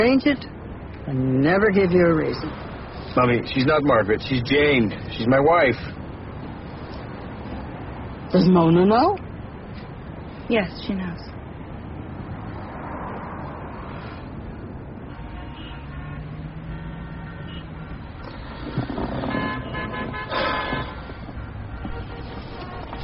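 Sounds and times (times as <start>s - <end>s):
speech: 0.0s - 6.0s, 8.3s - 9.2s, 10.5s - 11.3s
steady road traffic rumbling: 0.0s - 23.0s
car horns honking: 15.0s - 23.0s.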